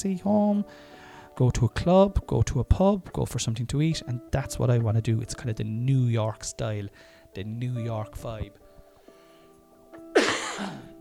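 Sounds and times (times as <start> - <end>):
speech: 0.0 - 8.6, 10.6 - 10.9
harsh rasping smoker's cough with wheezy rattle: 10.1 - 10.9.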